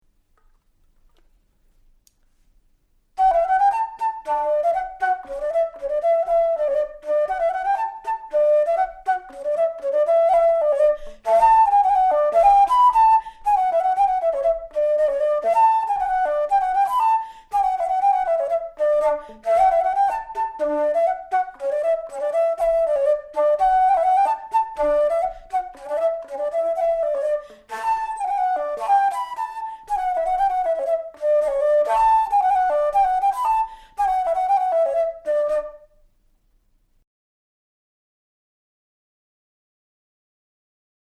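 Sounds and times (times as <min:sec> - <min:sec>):
polka on flute: 0:03.2 - 0:35.9.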